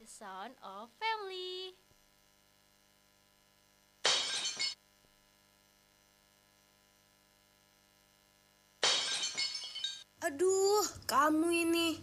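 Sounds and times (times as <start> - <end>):
faint steady hum: 0.0 - 12.0
speech: 0.2 - 1.9, 10.2 - 12.0
ceramic plate breaking and shattering: 4.1 - 4.8, 8.8 - 10.0.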